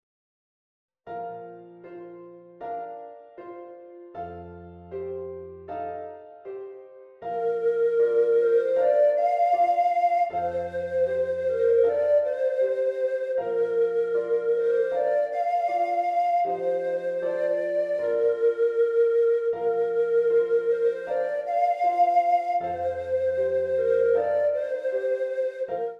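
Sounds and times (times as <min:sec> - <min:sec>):
piano accompanying a hymn tune: 0:01.1 - 0:25.9
treble recorder playing a hymn tune: 0:07.3 - 0:25.9.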